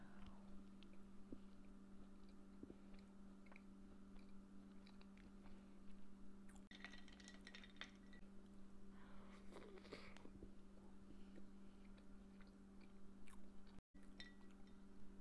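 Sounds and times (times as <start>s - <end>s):
steady low electrical hum: 0.0s - 15.1s
chewing a chocolate chip cookie: 0.2s - 6.7s, 9.4s - 14.8s.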